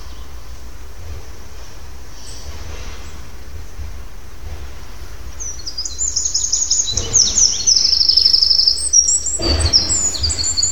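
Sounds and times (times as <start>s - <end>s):
low rumble of background noise: 0.0s - 10.7s
Eurasian wren Troglodytes troglodytes song: 5.4s - 10.7s.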